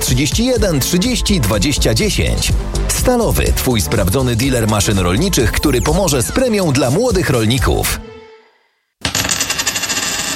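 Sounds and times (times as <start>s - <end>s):
speech: 0.1s - 8.0s
coin tossed with a faint metallic ring: 9.0s - 10.3s.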